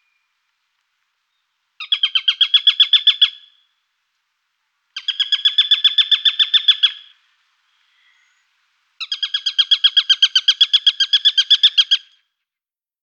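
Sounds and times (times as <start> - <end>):
Eurasian sparrowhawk Accipiter nisus chattering call: 1.8 - 3.6, 5.0 - 7.1, 9.0 - 12.1.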